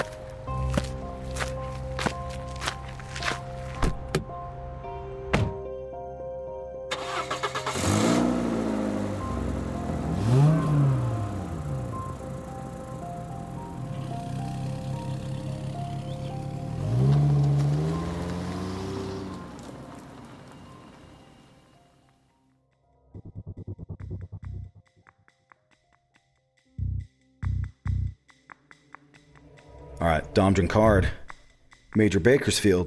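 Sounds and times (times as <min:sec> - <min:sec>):
footsteps: 0:00.0 - 0:04.1
car door clunks: 0:03.8 - 0:04.3, 0:05.3 - 0:05.6
car engine starting, driving off and accelerating: 0:06.9 - 0:21.8
speech: 0:30.1 - 0:31.2, 0:32.0 - 0:32.8.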